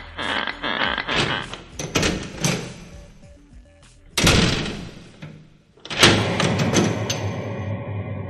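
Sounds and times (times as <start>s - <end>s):
two people's footsteps on old creaking wooden stairs: 0.0s - 2.6s
heavy wrought-iron attic door scraping open and slamming shut: 0.0s - 3.2s, 4.2s - 8.2s.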